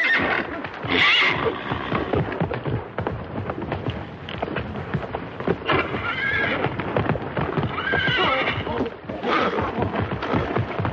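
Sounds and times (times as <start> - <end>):
horse neighing and whinnying while bolting: 0.0 - 2.1, 5.6 - 6.8, 7.6 - 10.6
horse hooves pounding and clattering: 0.0 - 10.9.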